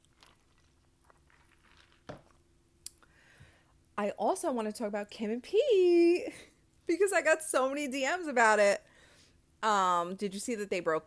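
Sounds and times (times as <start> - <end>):
slurp: 0.0 - 2.3
person sipping a drink: 0.0 - 3.1
speech: 4.0 - 8.9, 9.6 - 11.0.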